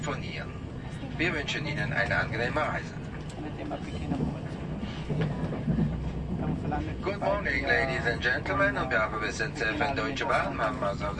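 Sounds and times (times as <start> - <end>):
TGV high-speed train running with rolling rumble: 0.0 - 11.1
speech: 0.1 - 0.6, 1.2 - 11.1
faint clatter of TGV high-speed train: 3.0 - 7.0.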